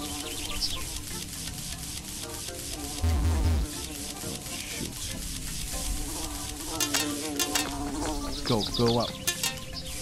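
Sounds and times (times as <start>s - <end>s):
video game wasps buzzing: 0.0s - 10.0s
busy video game sound effects: 3.0s - 3.7s
speech: 8.5s - 9.2s.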